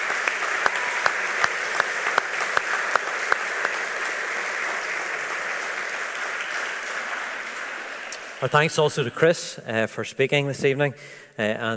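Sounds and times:
audience at an evening service applauding musicians: 0.0 - 9.4
speech: 8.4 - 11.7.

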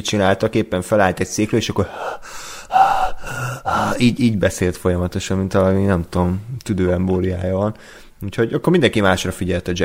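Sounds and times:
speech: 0.0 - 9.8
person imitating an actor's heavy panting: 1.8 - 4.4.

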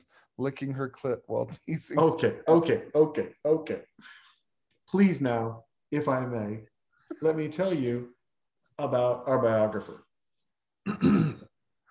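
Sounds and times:
speech: 0.0 - 4.2, 4.9 - 8.2, 8.8 - 10.0, 10.8 - 11.4
throat clearing: 10.9 - 11.6.

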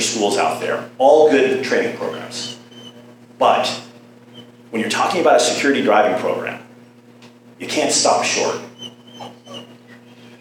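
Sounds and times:
steady low electrical hum: 0.0 - 10.4
speech: 0.1 - 2.6, 3.4 - 3.9, 4.7 - 6.6, 7.6 - 8.7
dog whimpering in high-pitched whines: 2.0 - 4.7, 8.2 - 10.4.

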